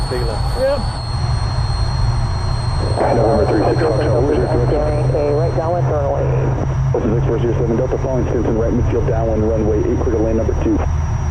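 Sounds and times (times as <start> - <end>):
aircraft engine droning inside a pressurized aircraft cabin: 0.0 - 11.2
speech: 0.1 - 1.0, 3.0 - 11.0.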